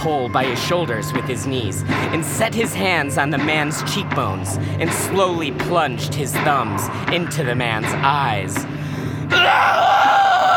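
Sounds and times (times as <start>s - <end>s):
speech: 0.0s - 8.8s, 9.4s - 10.0s
man screaming in agony: 9.3s - 10.5s.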